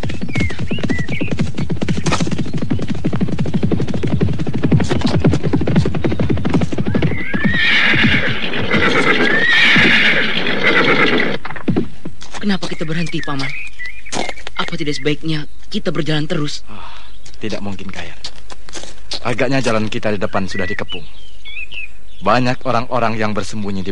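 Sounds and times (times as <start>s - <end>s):
several horses galloping as soldiers spur them on: 0.0s - 14.9s
horses neighing and whinnying: 4.9s - 11.8s
speech: 14.8s - 18.4s, 19.2s - 21.3s, 22.2s - 23.8s.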